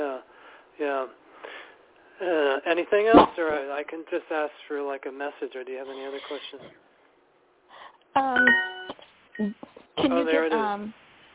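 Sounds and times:
speech: 0:00.8 - 0:01.2, 0:02.2 - 0:06.9, 0:08.2 - 0:08.7, 0:09.4 - 0:11.0
bell ringing: 0:08.3 - 0:09.5.

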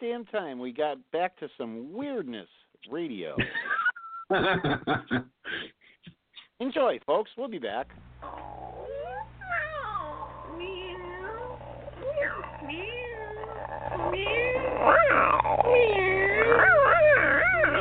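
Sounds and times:
speech: 0:00.0 - 0:05.8, 0:06.6 - 0:08.8, 0:13.9 - 0:17.1
faint steady hum: 0:00.1 - 0:17.7
laughter: 0:03.4 - 0:05.3
two cats meowing: 0:08.2 - 0:17.7.

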